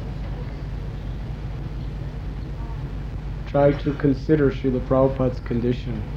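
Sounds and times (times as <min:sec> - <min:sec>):
boat engine rumble heard on board a boat at night: 0:00.0 - 0:05.3
speech: 0:03.5 - 0:06.1.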